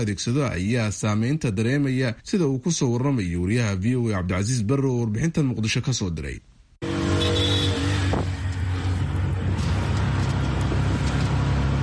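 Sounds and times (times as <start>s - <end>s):
speech: 0.0s - 6.5s
auto-rickshaw motor taxi engine rumbling on the streets of Mogadishu, Somalia: 6.8s - 11.8s.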